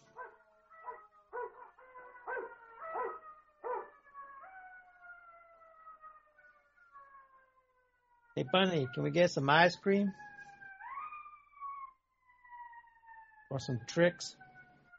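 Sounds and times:
dog yelping barks and long howl: 0.0 - 5.0, 10.4 - 11.9
speech: 8.4 - 10.2, 13.6 - 14.4.

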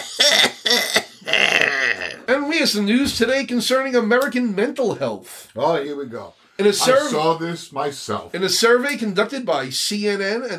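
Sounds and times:
harsh raspy coughs: 0.0 - 1.4
speech: 2.6 - 10.5.

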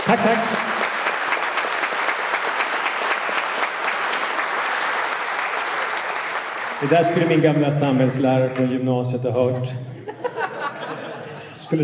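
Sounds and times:
audience applauding to welcome two authors: 0.0 - 7.5
speech: 0.1 - 0.8, 6.8 - 10.0
laughter: 9.4 - 11.8.

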